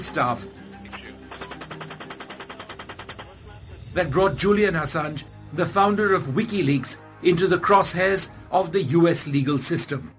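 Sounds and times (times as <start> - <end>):
speech: 0.0 - 0.6, 3.9 - 10.1
rapid automatic gunfire from an attack helicopter firing on civilians in Baghdad: 1.3 - 3.4.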